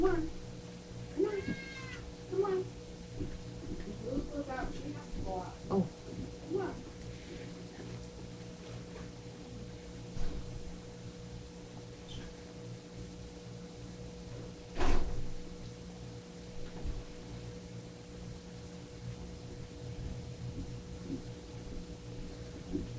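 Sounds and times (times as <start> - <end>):
steady low electrical hum: 0.0 - 22.9
pet cat meowing: 1.2 - 2.0.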